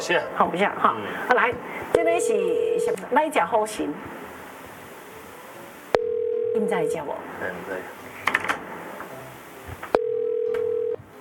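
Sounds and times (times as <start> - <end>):
faint hum: 0.0 - 11.1
speech: 0.1 - 4.3, 6.6 - 8.0
telephone ringback tone while calling: 2.0 - 3.0, 6.0 - 7.1, 10.0 - 11.0.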